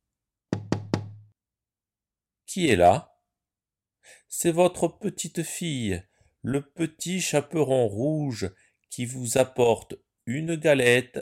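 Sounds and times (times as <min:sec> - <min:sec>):
firm knocking on a wooden door: 0:00.5 - 0:01.3
speech: 0:02.5 - 0:03.1, 0:04.0 - 0:11.2.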